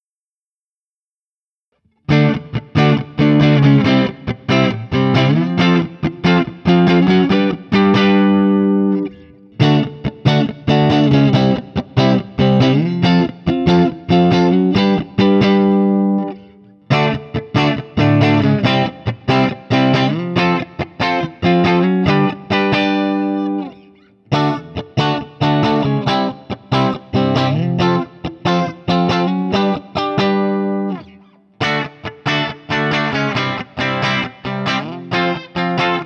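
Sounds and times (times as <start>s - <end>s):
1984 Guild X92 Citron Breakaway electric guitar playing A barre chords through JCM-800: 1.9s - 36.0s.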